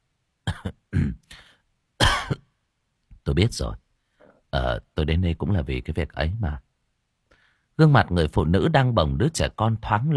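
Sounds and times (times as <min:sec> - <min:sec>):
young man clearing throat and coughing: 0:00.5 - 0:02.5
speech: 0:03.4 - 0:03.8, 0:04.5 - 0:06.7, 0:07.8 - 0:10.1.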